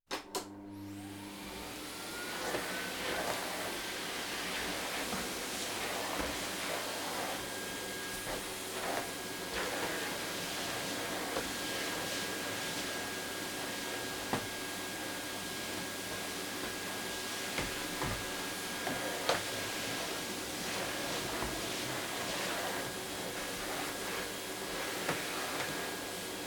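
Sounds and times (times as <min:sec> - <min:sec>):
vacuum cleaner: 0:00.1 - 0:26.4.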